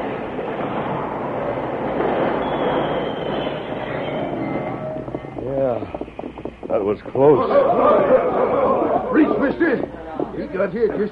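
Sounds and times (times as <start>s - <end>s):
train rumbling and clattering along rails while braking: 0.0s - 8.4s
thin faint squeal of train braking wheels: 2.0s - 7.3s
speech: 6.8s - 8.4s, 9.2s - 11.1s
laughter: 7.2s - 9.9s.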